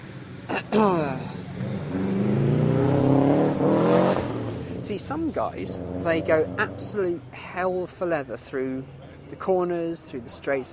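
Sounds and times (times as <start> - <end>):
race car engine droning as it rolls slowly past: 0.0 - 7.0
speech: 0.7 - 1.3, 5.0 - 10.7.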